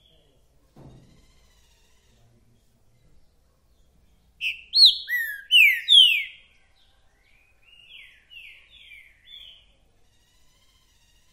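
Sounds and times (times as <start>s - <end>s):
Green-winged saltator song of clear whistles: 4.4s - 6.4s.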